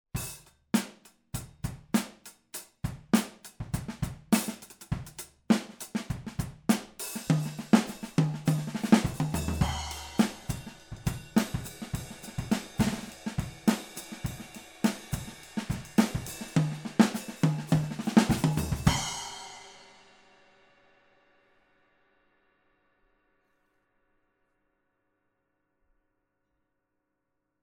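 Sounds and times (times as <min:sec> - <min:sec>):
drums recorded overhead: 0:00.0 - 0:21.4.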